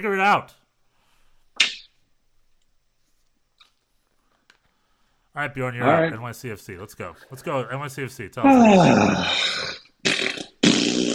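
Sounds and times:
speech: 0.0 - 0.6, 5.4 - 9.8
loud buzzy fart noises: 1.6 - 2.0, 8.8 - 11.1.

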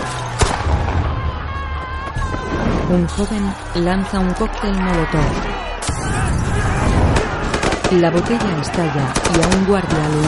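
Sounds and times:
police gunshots fired at stone-throwing rioters: 0.0 - 1.3, 5.2 - 10.2
dense noisy background: 0.0 - 10.2
speech: 2.9 - 6.2, 7.9 - 10.2.

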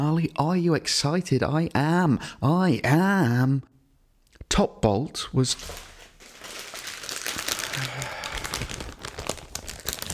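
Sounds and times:
speech: 0.0 - 3.7, 4.5 - 5.9
paper being unfolded and crinkled: 5.4 - 10.1.

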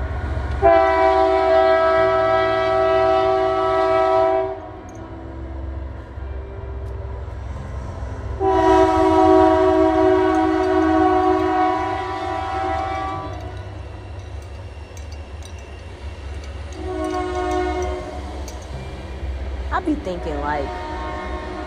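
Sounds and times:
train wheels rolling: 0.0 - 21.6
train horn blasts: 0.6 - 4.9, 8.4 - 13.6, 16.7 - 18.6, 20.4 - 21.6.

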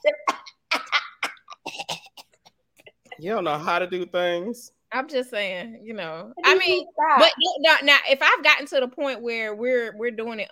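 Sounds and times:
person imitating coughing: 0.1 - 2.4
speech: 3.2 - 10.5.

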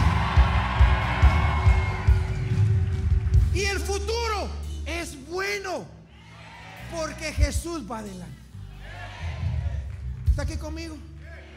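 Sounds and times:
audience shouting and cheering: 0.0 - 4.3, 6.0 - 7.7, 8.6 - 11.5
speech: 5.5 - 6.0, 6.9 - 8.4, 10.4 - 11.1.

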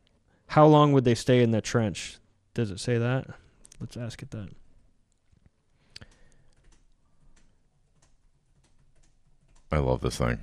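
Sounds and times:
speech: 0.5 - 4.6, 9.7 - 10.4
man typing on a computer keyboard: 6.0 - 9.8.

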